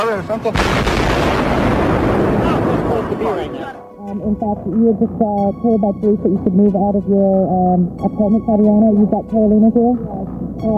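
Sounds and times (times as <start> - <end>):
speech: 0.0 - 2.4, 3.0 - 10.7
explosion rumble: 0.5 - 3.8.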